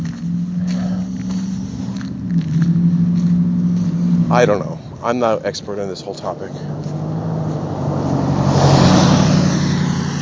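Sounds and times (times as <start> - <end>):
truck engine rumble and road noise driving past: 0.0 - 10.2
speech: 4.3 - 7.0.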